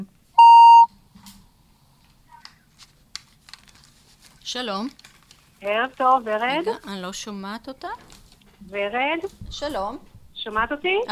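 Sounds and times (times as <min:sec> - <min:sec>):
incoming phone call electronic beep: 0:00.4 - 0:00.9
speech: 0:04.5 - 0:11.1.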